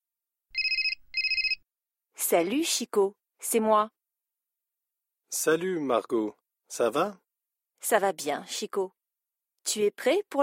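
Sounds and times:
mobile phone ringing: 0.6s - 1.6s
speech: 2.2s - 4.0s, 5.3s - 7.2s, 7.8s - 9.0s, 9.6s - 10.4s.

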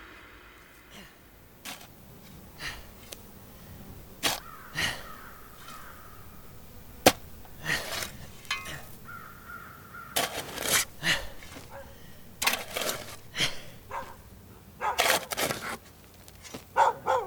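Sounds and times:
steady low hum: 0.0s - 17.2s
dog barking in sharp harsh bursts: 11.6s - 12.0s, 13.9s - 14.2s, 14.8s - 15.1s, 16.8s - 17.2s.

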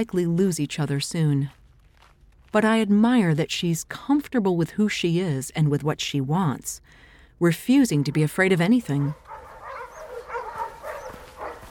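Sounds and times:
speech: 0.0s - 1.6s, 2.5s - 9.2s
dogs barking with higher yips: 8.9s - 11.6s.

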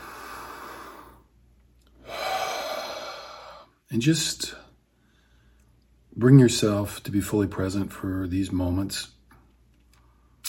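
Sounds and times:
deep breath: 0.0s - 1.3s, 2.0s - 3.8s, 4.9s - 5.8s
speech: 3.9s - 4.6s, 6.2s - 9.2s.

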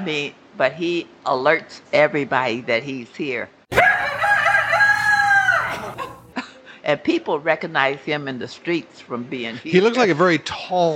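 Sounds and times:
speech: 0.0s - 3.6s, 6.9s - 10.9s
rooster crowing: 3.7s - 6.3s
laughter: 5.5s - 6.6s.

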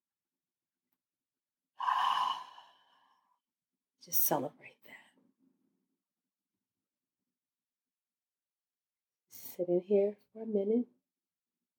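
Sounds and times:
single deep breath let out slowly in a soft airy sigh: 1.8s - 3.3s
speech: 4.0s - 5.0s, 9.6s - 11.0s.

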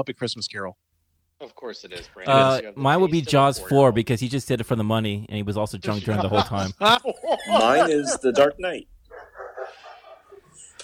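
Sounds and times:
speech: 0.0s - 0.8s, 1.4s - 9.0s
laughter: 5.9s - 10.8s
dog barking and yelping: 9.1s - 10.5s.

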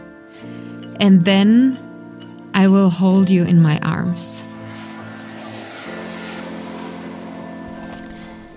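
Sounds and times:
speech: 0.4s - 1.8s, 2.6s - 4.5s
airplane engine drone while landing at airport: 3.7s - 8.5s
low humming tone: 4.4s - 8.5s.

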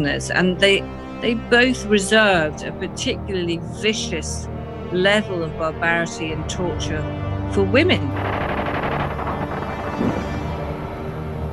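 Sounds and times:
speech: 0.0s - 8.4s
bursts of gunfire across the streets: 8.1s - 10.6s.

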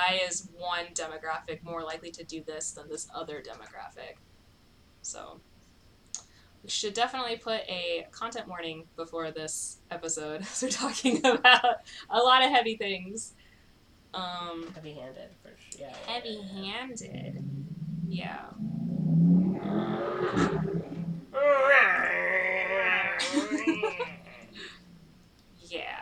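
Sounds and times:
speech: 0.1s - 4.3s, 5.0s - 5.5s, 6.6s - 13.4s, 14.1s - 20.8s
voice imitating a revving motorcycle: 16.6s - 25.0s
chuckling and laughter: 22.8s - 24.8s.

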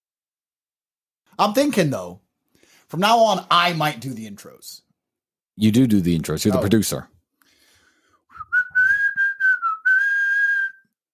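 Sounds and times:
speech: 1.4s - 2.2s, 2.9s - 4.8s, 5.6s - 7.2s
person whistling a short tune: 8.3s - 11.0s.

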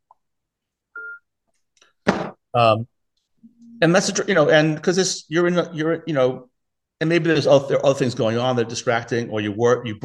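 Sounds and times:
short electronic beep from a phone being switched off: 1.0s - 1.3s, 3.4s - 4.0s
speech: 2.6s - 2.9s, 3.8s - 10.0s.

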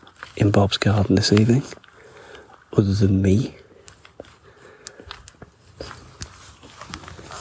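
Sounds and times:
faint rustling: 0.0s - 7.3s
footsteps crunching on soft ground in a garden at night: 0.0s - 7.3s
speech: 0.4s - 1.8s, 2.7s - 3.6s.

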